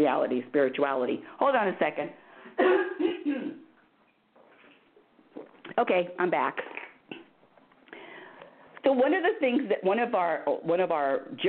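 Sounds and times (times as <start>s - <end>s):
speech: 0.0s - 2.2s, 5.8s - 6.8s, 8.8s - 11.4s
quiet breathing: 2.2s - 2.6s, 7.8s - 8.8s
harsh coughs: 2.6s - 3.7s.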